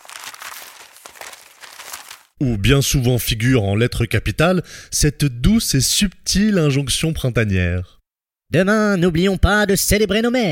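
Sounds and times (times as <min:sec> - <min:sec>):
newspaper being crumpled while wrapping a present: 0:00.0 - 0:02.4
speech: 0:02.4 - 0:10.5.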